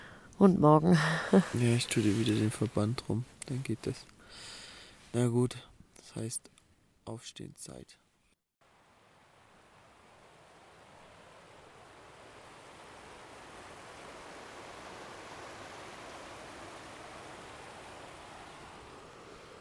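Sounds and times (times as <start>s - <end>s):
speech: 0.4s - 4.5s, 5.1s - 6.5s, 7.1s - 8.0s
laughter: 1.0s - 1.7s
clear mountain river flowing past rocks: 8.6s - 19.5s.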